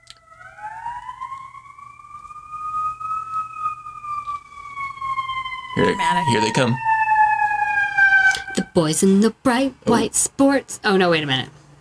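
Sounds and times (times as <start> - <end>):
emergency vehicle siren wailing as it passes: 0.0 - 10.1
low road rumble: 0.2 - 11.7
speech: 5.8 - 6.9, 8.8 - 11.6.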